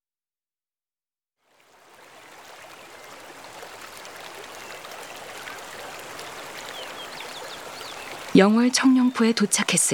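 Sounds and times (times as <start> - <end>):
Seogang river at Cheongnyeongpo in Yeongwol flowing: 1.5 - 9.9
speech: 8.4 - 9.9.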